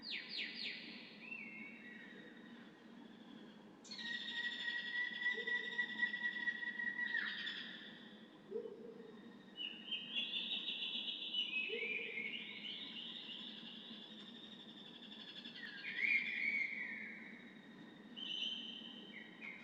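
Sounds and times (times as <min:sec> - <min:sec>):
daytime jungle atmosphere: 0:00.0 - 0:19.6.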